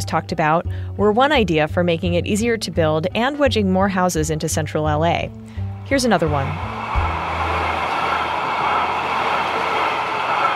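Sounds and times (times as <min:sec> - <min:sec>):
speech: 0:00.0 - 0:07.0
train rolling past on rail tracks: 0:06.0 - 0:10.5.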